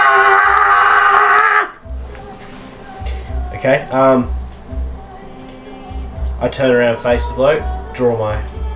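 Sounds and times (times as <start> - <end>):
voice imitating a loud strained shout: 0.0 - 1.8
speech: 3.6 - 4.4, 6.4 - 8.6.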